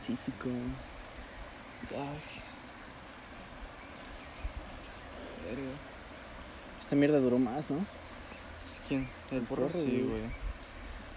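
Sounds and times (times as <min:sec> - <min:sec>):
speech: 0:00.0 - 0:01.0, 0:01.8 - 0:02.5, 0:05.4 - 0:05.9, 0:06.9 - 0:08.0, 0:08.9 - 0:10.5
river water flowing: 0:00.0 - 0:11.1.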